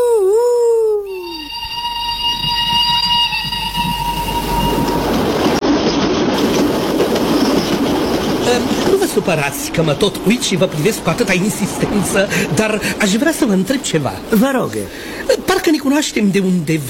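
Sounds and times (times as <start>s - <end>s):
shrill train whistle: 0.7s - 5.5s
train rumbling past: 1.4s - 16.8s
speech: 9.3s - 16.8s.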